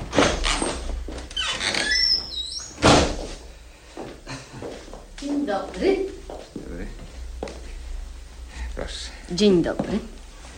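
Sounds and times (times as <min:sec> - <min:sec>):
door hinge squeaking: 0:00.2 - 0:03.0
speech: 0:05.5 - 0:06.1, 0:09.3 - 0:10.2.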